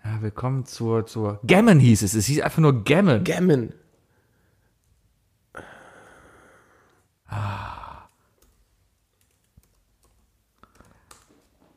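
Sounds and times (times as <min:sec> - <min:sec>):
speech: 0:00.2 - 0:03.8
computer keyboard typing with key clicks: 0:08.3 - 0:11.5.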